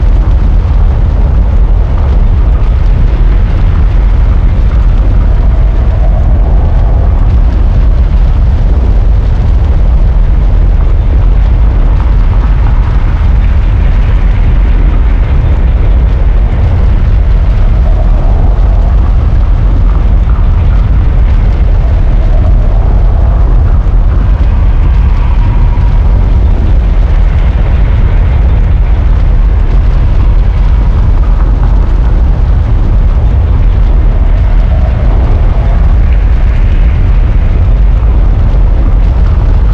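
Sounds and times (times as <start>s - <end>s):
cracking revolving loop: 0.0s - 39.7s.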